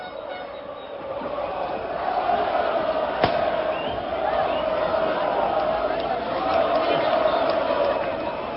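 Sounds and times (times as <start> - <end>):
huge crowd of football fans cheering and chanting: 0.0 - 8.5
sharp crack: 3.2 - 3.6.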